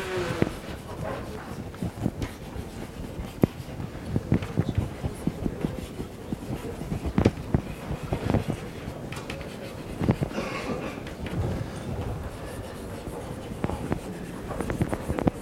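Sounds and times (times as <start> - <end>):
person handwriting a bracketed note: 0.0 - 15.3.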